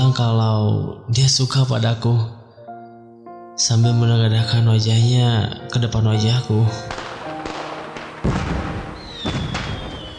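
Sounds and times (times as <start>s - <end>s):
speech: 0.1s - 2.4s, 3.6s - 7.1s
fireworks bursting with deep booming thuds: 6.9s - 10.1s
firework trailing a high whistling tone: 7.4s - 10.1s.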